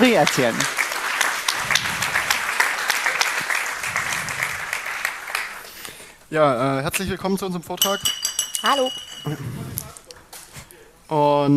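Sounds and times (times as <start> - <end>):
speech: 0.0 - 0.8, 6.3 - 10.0, 11.1 - 11.5
audience applause: 0.0 - 5.8.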